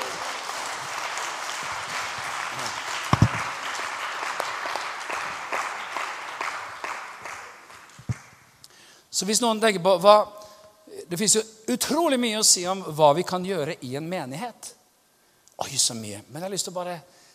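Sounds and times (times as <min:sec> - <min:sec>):
audience applauding: 0:00.0 - 0:08.4
speech: 0:09.2 - 0:10.4, 0:11.1 - 0:14.8, 0:15.6 - 0:17.2.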